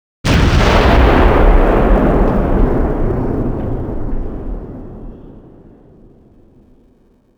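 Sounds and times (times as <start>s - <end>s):
mortar fire: 0.2s - 7.3s.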